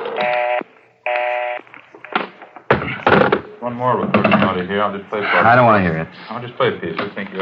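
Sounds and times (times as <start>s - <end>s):
telephone being dialed for an outside line: 0.2s - 1.6s
speech: 3.7s - 7.4s.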